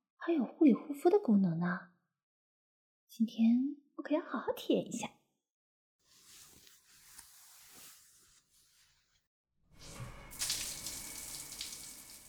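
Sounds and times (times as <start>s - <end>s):
speech: 0.2s - 1.9s, 3.1s - 5.2s
water running during a bath: 9.8s - 12.2s.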